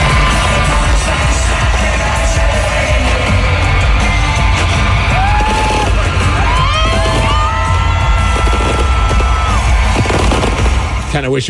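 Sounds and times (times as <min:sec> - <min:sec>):
large outdoor crowd cheering, whooping and yelling: 0:00.0 - 0:11.4
fireworks booming over a large outdoor crowd: 0:04.7 - 0:11.1.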